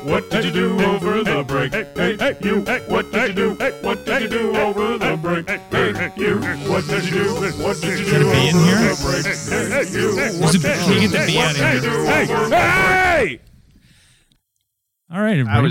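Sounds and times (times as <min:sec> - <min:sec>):
speech: 0:00.0 - 0:02.8, 0:10.5 - 0:13.4, 0:15.3 - 0:15.6
music track: 0:00.0 - 0:13.2
dense loud swarm of bees buzzing: 0:06.2 - 0:12.7.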